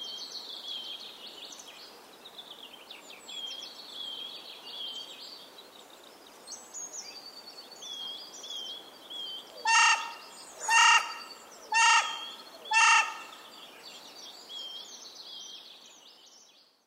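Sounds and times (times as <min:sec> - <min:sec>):
carrion crow giving harsh hoarse caws: 0:09.6 - 0:13.4.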